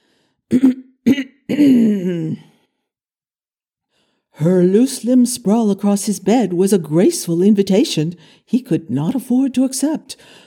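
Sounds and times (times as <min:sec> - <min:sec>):
speech: 0:00.5 - 0:00.8, 0:04.4 - 0:10.4
man clearing his throat theatrically: 0:00.5 - 0:02.5.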